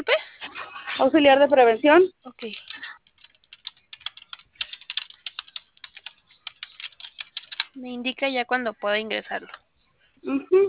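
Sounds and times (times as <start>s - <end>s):
speech: 1.0s - 2.7s, 7.8s - 9.6s, 10.2s - 10.6s
typing on a computer keyboard: 2.4s - 7.8s.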